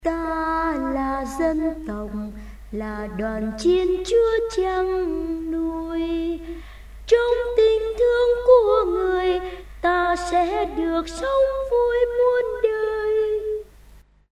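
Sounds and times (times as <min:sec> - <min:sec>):
soprano voice: 0:00.0 - 0:13.7.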